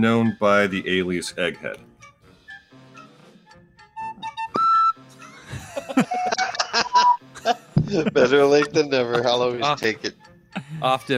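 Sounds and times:
speech: 0:00.0 - 0:01.9, 0:07.4 - 0:11.1
whistle sound effect blowing: 0:04.0 - 0:05.0
laughter: 0:05.2 - 0:10.9.

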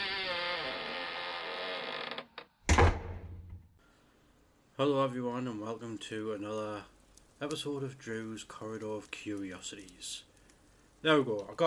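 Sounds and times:
door creaking as it is opened with a key: 0:00.0 - 0:03.6
loud low thud: 0:02.7 - 0:03.6
speech: 0:04.8 - 0:10.3, 0:11.0 - 0:11.6.

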